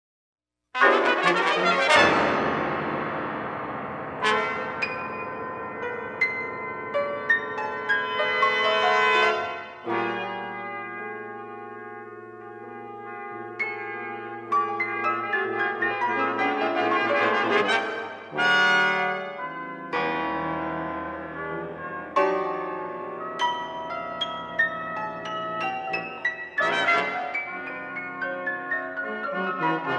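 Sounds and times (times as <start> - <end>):
brass quintet: 0.8 - 2.6, 4.2 - 5.1, 8.0 - 22.7, 26.6 - 29.9
piano: 0.8 - 29.9.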